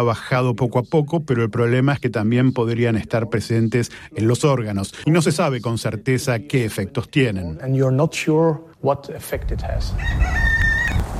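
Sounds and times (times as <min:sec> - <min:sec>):
speech: 0:00.0 - 0:10.4
rooster crowing: 0:10.0 - 0:11.1.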